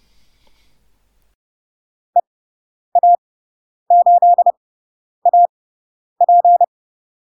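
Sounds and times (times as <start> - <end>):
steady mid-pitched Morse code tone keying a radio callsign: 3.9 - 4.5, 5.3 - 5.5, 6.2 - 6.7.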